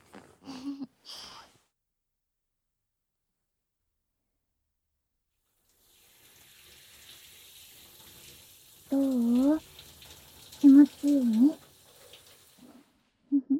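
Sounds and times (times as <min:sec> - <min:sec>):
shower water running: 0:05.6 - 0:13.2
splashy burst: 0:05.8 - 0:13.0.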